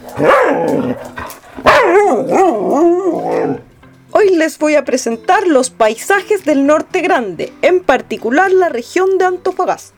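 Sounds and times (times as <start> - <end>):
speech: 0.2 - 0.4, 4.5 - 9.9
small female dog barking and whining: 0.2 - 3.6.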